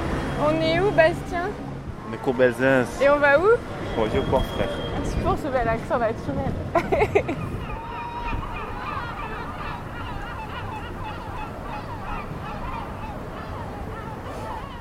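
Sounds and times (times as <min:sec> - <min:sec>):
busy outdoor street noise in Marseille: 0:00.0 - 0:14.7
chattering voices: 0:00.0 - 0:14.7
speech: 0:00.4 - 0:07.6
laughter: 0:06.7 - 0:07.7
honking gull-like bird calls: 0:07.2 - 0:14.7.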